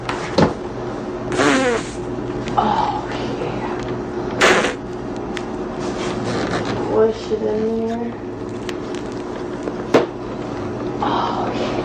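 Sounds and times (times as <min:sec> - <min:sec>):
steady low hum: 0:00.0 - 0:11.8
fart noises: 0:01.3 - 0:02.0, 0:04.4 - 0:04.9.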